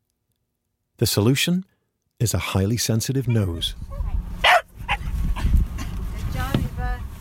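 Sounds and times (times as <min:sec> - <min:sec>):
speech: 0:01.0 - 0:04.1
steady low rumble: 0:03.6 - 0:07.2
dog barking: 0:04.4 - 0:05.1.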